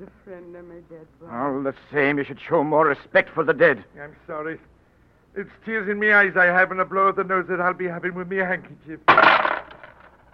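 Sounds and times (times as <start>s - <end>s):
speech: 0.0s - 4.8s, 5.4s - 9.4s
coins clattering on a hard floor: 9.1s - 10.3s.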